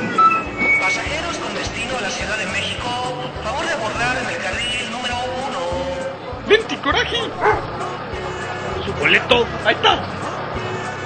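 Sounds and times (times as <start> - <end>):
beep: 0.0 - 1.1
bustling crowd chattering in a large bus terminal: 0.0 - 11.0
idling buses engine rumble: 0.0 - 11.0
speech: 9.1 - 10.1.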